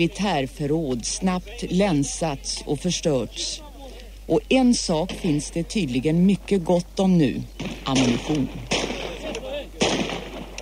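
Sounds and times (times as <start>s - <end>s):
speech: 0.0s - 3.6s, 4.3s - 8.8s
murmuring voices: 0.0s - 10.6s
gunshot: 7.6s - 10.6s.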